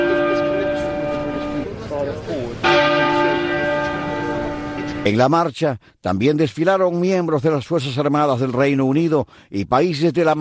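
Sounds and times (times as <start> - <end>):
great clock tower bell tolling at Palace of Westminster London during funeral procession: 0.0 - 5.2
speech: 5.0 - 10.3.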